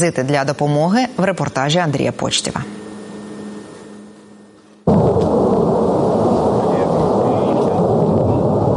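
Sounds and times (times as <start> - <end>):
speech: 0.0 - 2.8
quiet low hum: 0.0 - 8.7
military aircraft roaring overhead: 2.5 - 8.7.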